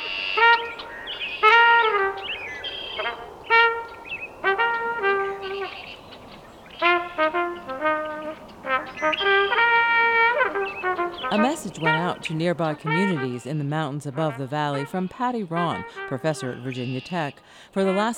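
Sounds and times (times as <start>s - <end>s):
faint red-winged blackbird calls: 0.0s - 12.2s
lone trumpet playing a slow outdoor melody: 0.0s - 18.1s
speech: 11.8s - 18.1s.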